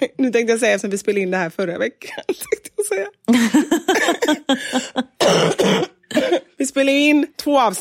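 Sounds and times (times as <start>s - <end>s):
speech: 0.2s - 7.8s
harsh rasping coughing fit: 3.9s - 6.6s.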